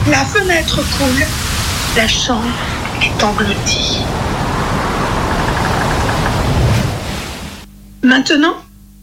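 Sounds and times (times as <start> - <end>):
torrential rain in a storm: 0.0 - 7.7
speech: 0.1 - 4.4, 8.0 - 8.6.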